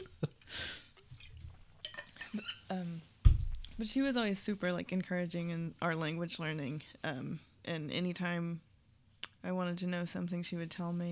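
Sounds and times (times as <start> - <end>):
faint liquid sloshing in a water bottle: 0.0 - 2.7, 3.3 - 4.1
water bottle handling noises with rustling scrapes and clicks: 0.0 - 2.7
speech: 3.8 - 8.7, 9.4 - 11.1.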